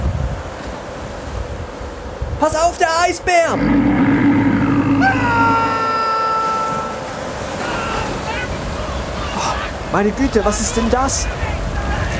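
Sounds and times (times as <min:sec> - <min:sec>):
wind: 0:00.0 - 0:12.1
speech: 0:02.4 - 0:04.0, 0:09.9 - 0:11.5
steady rushing ocean surf: 0:03.5 - 0:09.3
higher warbling sounds: 0:03.6 - 0:06.1.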